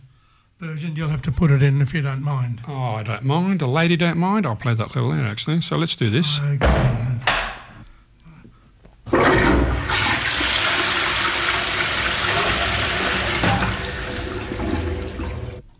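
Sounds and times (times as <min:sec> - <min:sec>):
speech: 0:00.6 - 0:07.1
toilet flushing: 0:09.1 - 0:15.7.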